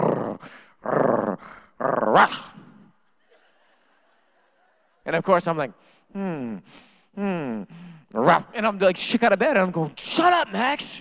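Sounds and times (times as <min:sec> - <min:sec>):
voice imitating a pet dog's breathy growl at night: 0:00.0 - 0:02.9
speech: 0:00.5 - 0:02.5, 0:05.1 - 0:10.9
laughter: 0:03.2 - 0:05.0.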